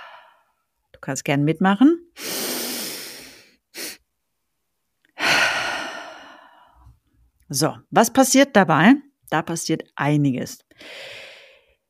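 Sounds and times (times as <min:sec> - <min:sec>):
long full exhale during a guided breathing exercise: 0:00.0 - 0:00.5, 0:02.2 - 0:04.0, 0:05.2 - 0:06.9, 0:10.8 - 0:11.8
deep inhale during a guided breathing exercise: 0:00.0 - 0:00.6, 0:02.2 - 0:04.0, 0:05.2 - 0:07.0, 0:10.8 - 0:11.8
speech: 0:01.0 - 0:02.3, 0:07.5 - 0:11.2.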